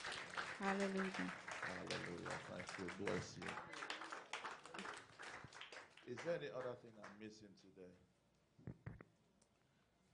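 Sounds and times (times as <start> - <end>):
congregation clapping and applauding: 0.0 - 7.4
speech: 0.6 - 3.8, 6.1 - 8.8.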